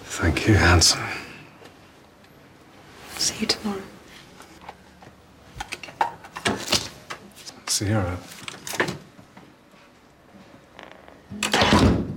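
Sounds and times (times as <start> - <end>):
speech: 0.2 - 1.3, 3.4 - 4.0, 7.8 - 8.4
door swinging shut with a solid thud: 11.5 - 12.1.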